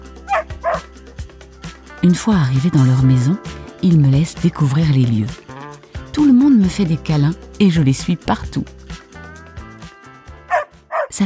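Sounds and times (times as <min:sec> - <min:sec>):
small dog barking in the back of a family car: 0:00.3 - 0:00.9, 0:10.5 - 0:11.2
speech: 0:02.0 - 0:05.4, 0:06.1 - 0:08.8.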